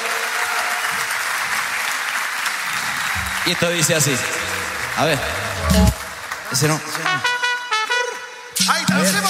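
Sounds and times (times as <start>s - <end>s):
crowd applauding: 0.0s - 7.4s
speech: 3.4s - 7.4s, 8.6s - 9.2s.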